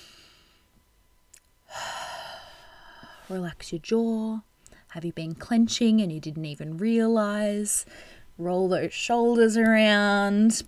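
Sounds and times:
deep breath in and out during a guided relaxation pause: 0.0 - 0.7, 1.7 - 3.4, 7.8 - 8.4
speech: 3.3 - 10.6.

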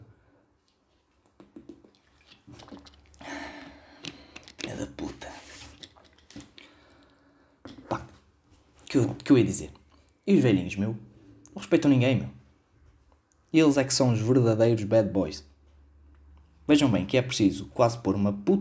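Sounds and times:
mouth noises: 1.2 - 6.7, 7.7 - 10.0
gulping swallows: 1.3 - 3.8
wet drinking sips: 1.3 - 8.0
speech: 8.9 - 12.4, 13.5 - 15.5, 16.7 - 18.5.

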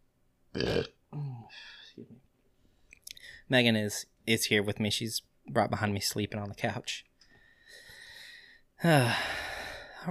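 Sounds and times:
croaking belch trailing into a higher strained tone: 0.5 - 1.0
loud burp: 0.5 - 1.0
soft grunt: 0.6 - 2.2
speech: 0.6 - 2.2, 3.5 - 7.1, 8.8 - 9.4.

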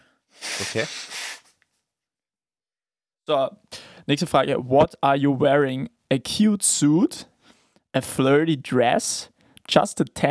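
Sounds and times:
nose blowing: 0.0 - 1.6
person snuffling: 0.3 - 1.6
speech: 0.6 - 1.2, 3.3 - 7.3, 7.9 - 10.2.

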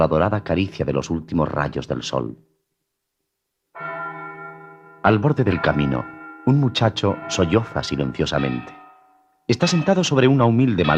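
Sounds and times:
speech: 0.0 - 2.5, 5.0 - 8.8, 9.5 - 10.9
church bell ringing: 3.8 - 10.9.

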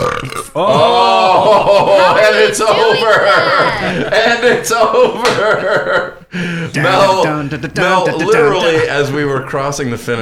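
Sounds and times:
person imitating a loud drawn-out burp: 0.0 - 1.2
speech: 0.2 - 10.2
laughter: 0.6 - 10.2
breathy sound: 6.2 - 6.8.

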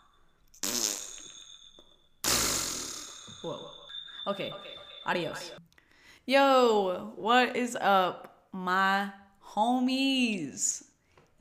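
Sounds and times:
loud buzzy fart noise: 0.6 - 1.5, 2.2 - 3.4
speech: 3.4 - 5.7, 6.3 - 11.3.

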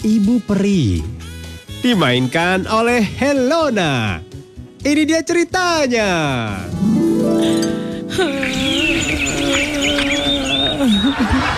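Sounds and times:
speech: 0.0 - 1.2, 1.8 - 11.5
laughter: 8.1 - 11.5
birds chirping and trilling: 8.3 - 11.2.

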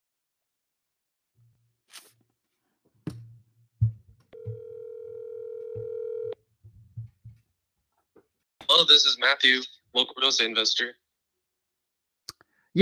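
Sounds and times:
telephone dial tone while calling a phone number: 4.4 - 6.4
speech: 8.8 - 11.0.

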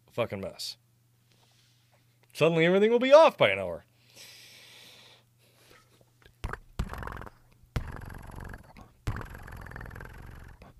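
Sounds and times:
speech: 0.2 - 0.8, 2.4 - 4.3
cat purring: 6.4 - 10.7.

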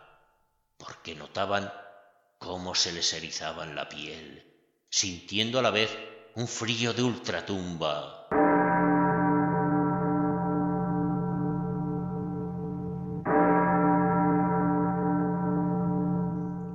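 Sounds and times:
speech: 0.8 - 1.8, 2.4 - 8.2
deep church bell tolling at midnight: 8.3 - 16.7.

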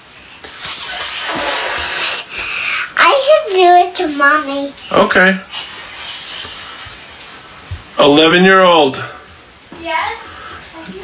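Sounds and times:
child hissing like a snake: 0.4 - 3.0, 5.4 - 7.6
speech: 3.5 - 5.5, 8.0 - 9.2.

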